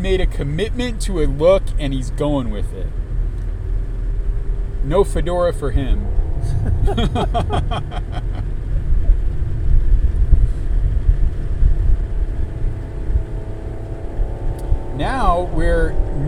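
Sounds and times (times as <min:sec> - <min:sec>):
speech: 0:00.0 - 0:03.0, 0:04.8 - 0:08.5, 0:15.0 - 0:16.2
distant muscle car engine revving loudly: 0:00.0 - 0:16.2
laughter: 0:06.5 - 0:08.5.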